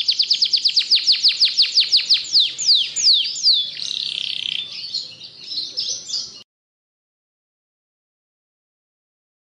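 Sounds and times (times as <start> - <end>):
Atlantic canary singing in ngebren style: 0.0 - 6.4.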